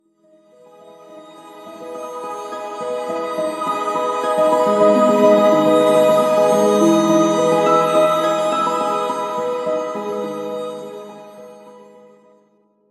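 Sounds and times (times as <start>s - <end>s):
melody: 1.8s - 11.7s.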